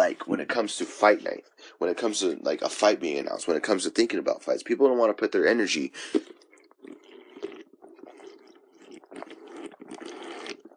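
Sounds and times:
speech: 0.1 - 7.0
person drinking water with gulps and swallows: 5.9 - 10.7.

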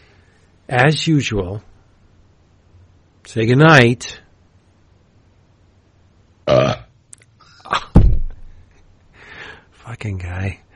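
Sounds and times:
speech: 0.7 - 1.7, 3.3 - 4.2, 6.5 - 6.8, 10.0 - 10.6
burping: 6.4 - 6.9.

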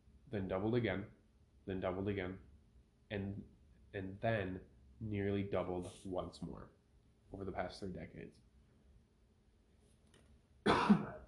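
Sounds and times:
speech: 0.3 - 2.5, 3.1 - 8.4
single sharp cough: 10.7 - 11.2.

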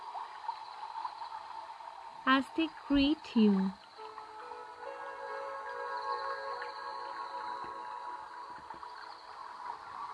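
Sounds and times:
water gurgling: 0.0 - 4.3, 6.5 - 10.1
running water in a small clear stream: 0.0 - 10.1
speech: 2.2 - 3.8.

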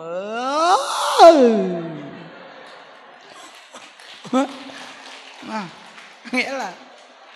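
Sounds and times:
person imitating a loud drawn-out yawn: 0.0 - 2.2
speech: 1.2 - 1.7, 6.3 - 6.8
laughter: 1.2 - 5.6.

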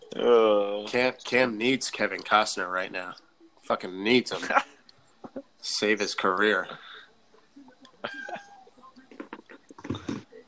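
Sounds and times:
speech: 0.2 - 4.7, 5.6 - 6.9
cat meowing loudly with strained cries: 8.1 - 8.7.

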